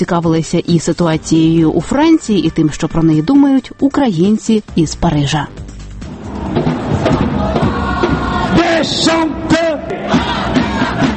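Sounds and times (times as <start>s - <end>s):
speech: 0.0s - 5.6s, 8.6s - 9.6s
crowd yelling and shouting during street riots in a French city: 6.2s - 11.1s.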